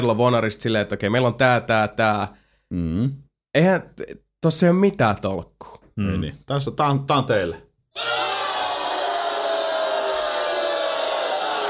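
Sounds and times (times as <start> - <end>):
speech: 0.0 - 8.3
crowd jeering and booing in disapproval: 8.0 - 11.6.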